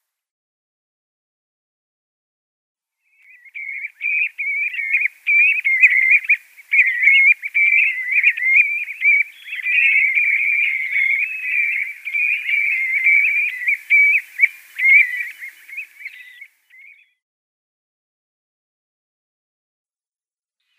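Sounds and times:
common ringed plover giving a rolling trilled piping run: 3.6 - 16.4.

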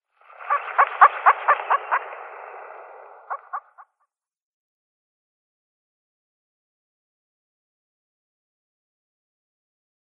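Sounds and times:
female black grouse calling: 0.4 - 2.0, 3.3 - 3.9.

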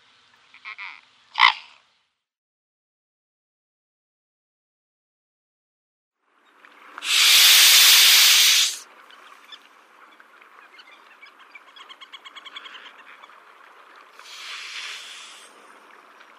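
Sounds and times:
speech: 0.8 - 1.2
mute swan hissing: 7.0 - 8.8, 14.2 - 15.6.

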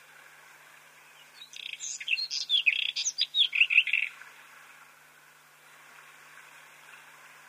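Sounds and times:
white-throated robin singing: 1.1 - 4.2.

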